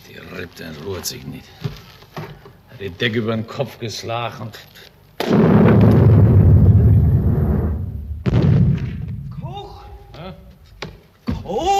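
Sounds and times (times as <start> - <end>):
speech: 0.1 - 4.9
artillery gunfire booming in a town during fighting: 5.2 - 9.5.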